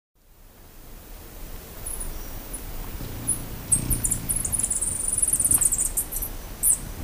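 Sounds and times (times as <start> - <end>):
velvet-purple coronet calling in Ecuador: 1.8 - 6.8.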